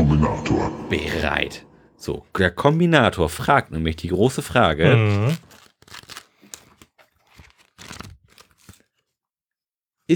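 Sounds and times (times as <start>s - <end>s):
speech: 0.3s - 6.0s
pages of two paper pads flipping: 3.9s - 9.2s.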